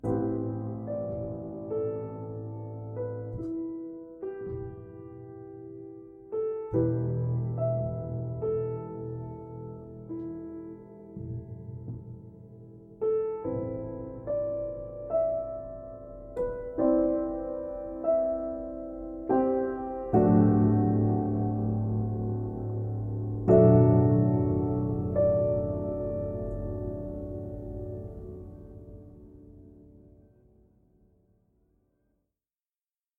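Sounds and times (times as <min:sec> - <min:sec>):
short piano: 0:00.0 - 0:31.8.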